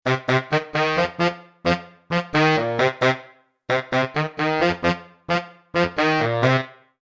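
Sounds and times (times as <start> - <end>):
baritone saxophone: 0.0 - 6.9.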